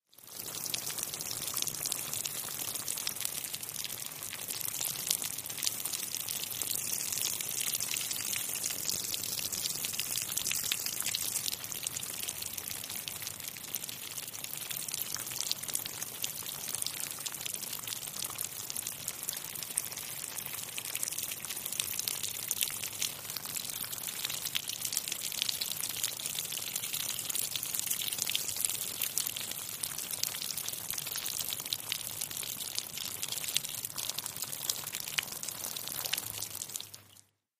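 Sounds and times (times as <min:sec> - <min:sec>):
rain falling on mud: 0:00.0 - 0:37.3.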